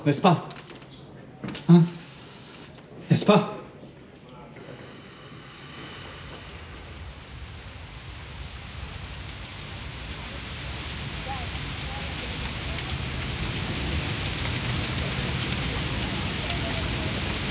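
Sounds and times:
speech: 0.0 - 0.6, 1.7 - 2.0, 3.1 - 3.6
heavy rain pouring and drumming on surfaces: 0.0 - 17.4.

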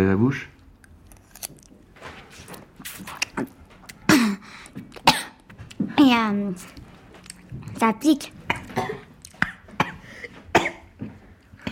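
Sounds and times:
speech: 0.0 - 0.6, 6.1 - 6.8, 7.5 - 9.0
people coughing after tasting vinegar: 5.0 - 5.4, 8.5 - 11.0
throat clearing: 8.5 - 10.9.

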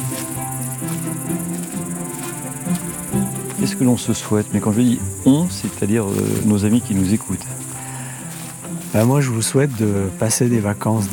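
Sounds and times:
grasshopper stridulating: 0.0 - 11.1
speech: 3.6 - 7.7, 9.0 - 11.1.

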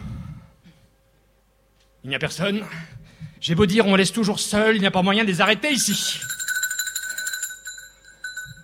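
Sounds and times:
speech: 2.0 - 6.4
small handbell shaken rapidly: 5.9 - 8.6.

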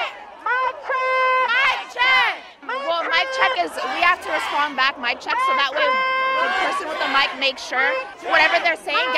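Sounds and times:
protest crowd chanting slogans in unison: 0.0 - 9.1
speech: 3.4 - 9.1.

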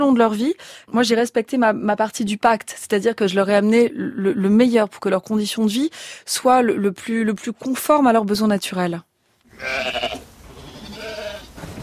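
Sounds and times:
speech: 0.0 - 10.2
sheep and lambs bleating in a flock: 9.5 - 11.6.

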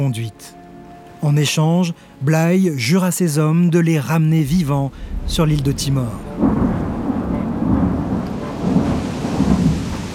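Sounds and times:
speech: 0.0 - 0.6, 1.2 - 7.0
deep rolling thunder: 4.4 - 10.1
steady rain: 4.4 - 10.1.

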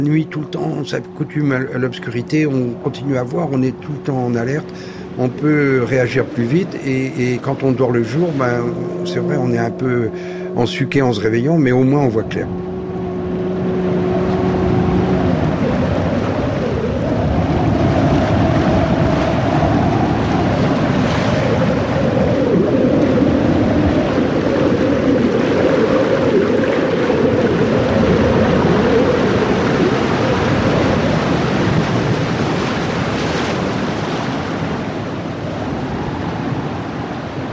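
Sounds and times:
speech: 0.0 - 12.7
low tonal hum: 0.0 - 33.1
wind aboard a sailing boat: 0.0 - 37.5
sea water surging and hissing against a sailing boat hull: 4.6 - 10.6.

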